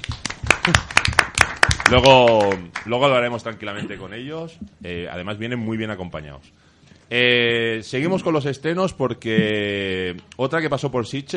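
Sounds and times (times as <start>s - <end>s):
applause from a small group for arriving guests: 0.0s - 3.1s
speech: 0.7s - 1.0s, 1.9s - 11.3s.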